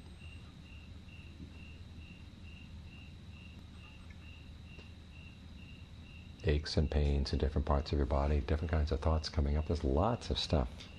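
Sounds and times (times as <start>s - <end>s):
crickets chirping: 0.0s - 10.9s
low constant rumble of traffic: 6.4s - 10.9s
speech: 6.5s - 10.9s.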